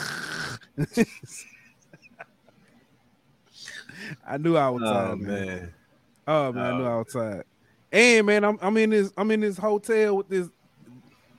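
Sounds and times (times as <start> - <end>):
person imitating snoring: 0.0 - 0.7
speech: 0.8 - 1.5, 4.0 - 10.6.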